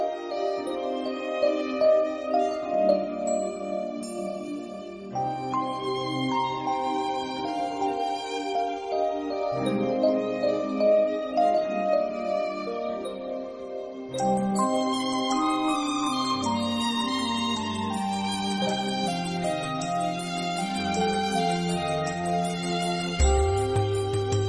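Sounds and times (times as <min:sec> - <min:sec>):
rhythm theme music: 0:00.1 - 0:24.4.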